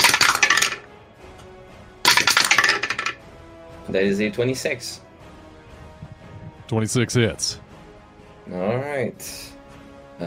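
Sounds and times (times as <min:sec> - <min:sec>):
dice rolled during a tabletop Dungeons & Dragons game: 0:00.0 - 0:00.9, 0:02.1 - 0:03.2
speech: 0:03.9 - 0:05.1, 0:06.7 - 0:07.7, 0:08.5 - 0:09.6.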